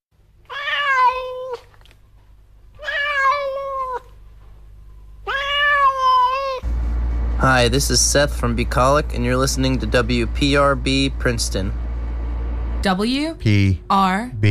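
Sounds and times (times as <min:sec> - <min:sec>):
faint low hum: 0:00.2 - 0:14.4
cat meowing: 0:00.5 - 0:01.7, 0:02.8 - 0:04.1, 0:05.2 - 0:06.6
speech: 0:07.5 - 0:11.8, 0:12.8 - 0:14.4.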